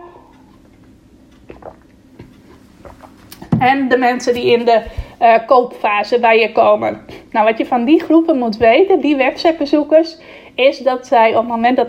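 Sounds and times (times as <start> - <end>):
person sipping and swallowing water: 1.4 - 3.1
speech: 3.6 - 11.8.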